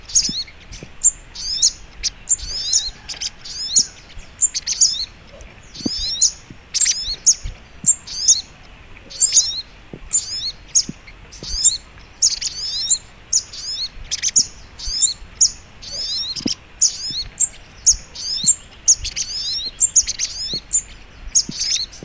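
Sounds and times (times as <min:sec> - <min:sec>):
sogok ontong bird singing a rapid high twitter: 0:00.0 - 0:22.0
faint low taps: 0:05.3 - 0:08.2, 0:09.9 - 0:11.8, 0:16.4 - 0:17.4, 0:20.4 - 0:22.0.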